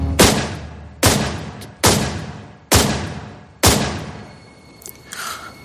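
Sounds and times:
gunshots fired at close range: 0:00.2 - 0:04.2.

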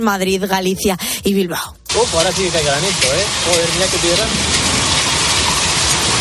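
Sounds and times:
speech: 0:00.0 - 0:04.7
heavy rain possibly mixed with hail from storm: 0:01.9 - 0:06.1.

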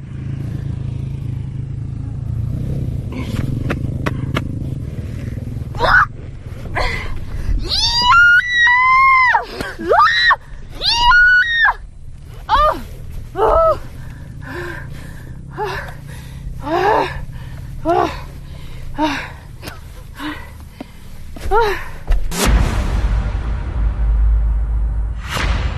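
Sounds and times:
steady low rumble: 0:01.5 - 0:11.0, 0:11.7 - 0:25.7
woman screaming and grunting with effort lifting a motorcycle on a sand dune: 0:05.8 - 0:11.8, 0:12.5 - 0:14.8, 0:15.4 - 0:16.0, 0:16.6 - 0:18.4, 0:19.0 - 0:19.4, 0:21.4 - 0:22.0.

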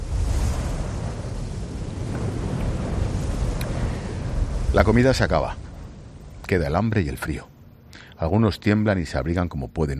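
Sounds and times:
rough sea waves churning and surging: 0:00.0 - 0:06.7
strong wind roaring across the microphone: 0:00.0 - 0:06.9
speech: 0:04.8 - 0:05.7, 0:06.5 - 0:07.5, 0:08.2 - 0:09.9.

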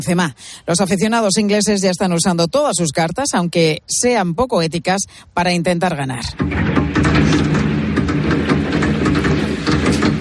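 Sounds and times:
speech: 0:00.0 - 0:07.6
low rumble: 0:06.3 - 0:10.1
fireworks crackling and popping at night: 0:06.4 - 0:10.1.

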